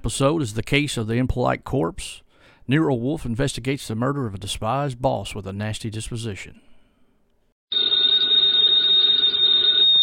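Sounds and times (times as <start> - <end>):
speech: 0.0 - 6.7
telephone bell ringing: 7.7 - 10.0.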